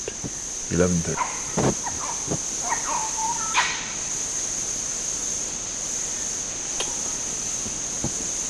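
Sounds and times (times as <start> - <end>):
red colobus monkey chittering chiss calls: 0.0 - 8.4
steady high insect-like hiss: 0.0 - 8.4
speech: 0.7 - 2.6
red colobus monkeys giving chiss and nyaw barks: 1.1 - 3.9.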